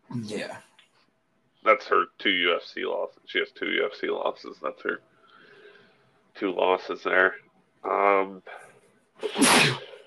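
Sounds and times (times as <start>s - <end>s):
speech: 0.2s - 0.7s, 1.6s - 5.1s, 6.4s - 8.6s, 9.2s - 9.8s
sneeze: 9.2s - 10.0s.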